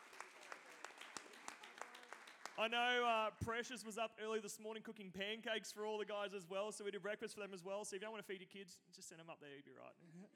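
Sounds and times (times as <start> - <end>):
crowd clapping in a large room: 0.0 - 3.6
speech: 2.6 - 10.3.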